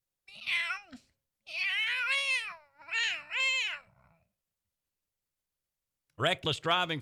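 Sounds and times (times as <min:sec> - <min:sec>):
cats meowing: 0:00.3 - 0:04.3
speech: 0:06.2 - 0:06.9.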